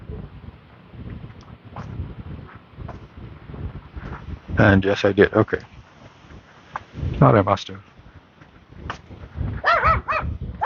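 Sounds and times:
low rumble: 0.0s - 10.6s
speech: 4.6s - 5.7s, 7.2s - 7.9s
dog barking: 9.6s - 10.6s.

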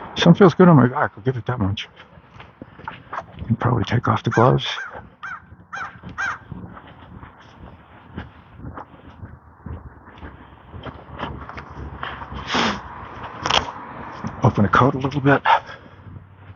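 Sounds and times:
wind: 0.0s - 16.5s
speech: 0.2s - 2.2s, 3.5s - 5.0s, 14.6s - 15.6s
faint rustling: 1.5s - 16.5s
crows cawing outdoors: 4.2s - 6.5s.

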